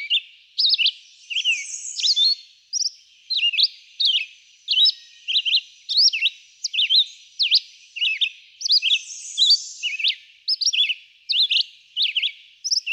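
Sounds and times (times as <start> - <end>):
red-eyed vireo singing brief whistled phrases: 0.0 - 12.9.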